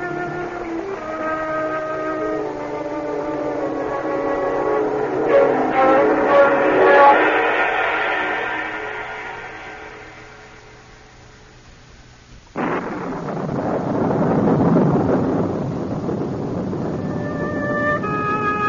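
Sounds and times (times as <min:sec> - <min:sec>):
steady rushing noise: 0:00.0 - 0:18.6
loud thunder crash from a lightning strike: 0:03.8 - 0:11.4, 0:12.5 - 0:18.6.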